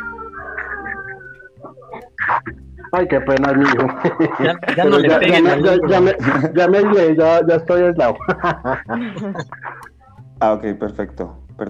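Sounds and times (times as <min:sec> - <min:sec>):
person crying in wavering wails: 0:00.4 - 0:03.0, 0:03.9 - 0:07.2, 0:08.1 - 0:09.9
laughter: 0:00.4 - 0:09.9
speech: 0:02.9 - 0:09.7, 0:10.4 - 0:11.6.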